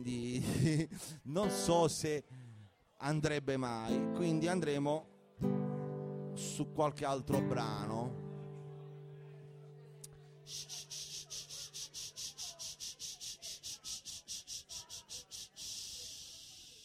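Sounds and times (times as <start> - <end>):
speech: 0.0 - 2.4, 3.0 - 5.1, 6.4 - 8.2
cicadas singing: 10.5 - 16.8.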